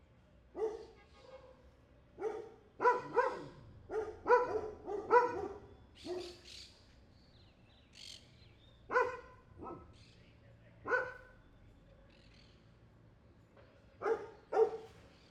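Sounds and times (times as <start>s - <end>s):
street dog barking: 0.5s - 6.4s, 8.9s - 10.0s, 10.8s - 11.4s, 14.0s - 15.0s.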